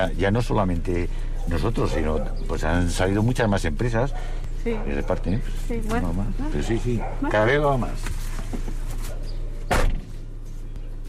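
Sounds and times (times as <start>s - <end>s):
speech: 0.0s - 8.7s
steady low engine-like hum: 0.0s - 11.0s
car door shutting: 8.0s - 10.2s.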